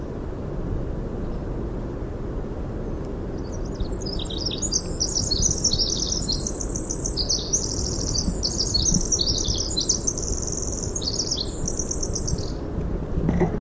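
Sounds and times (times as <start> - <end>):
low-pitched ambient rumble: 0.0 - 13.5
winter wren singing high bubbling trills: 3.4 - 12.6.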